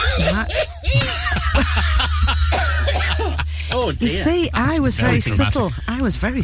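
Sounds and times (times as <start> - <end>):
person coughing in short harsh bursts: 0.0 - 3.5
laughter: 0.0 - 6.1
low steady hum: 0.0 - 6.4
speech: 0.2 - 0.7, 1.5 - 2.5, 3.9 - 6.4.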